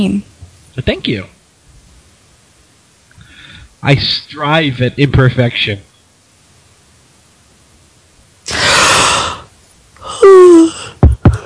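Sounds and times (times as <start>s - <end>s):
speech: 0.0s - 1.4s, 3.8s - 5.9s
exaggerated yawn: 8.5s - 11.4s.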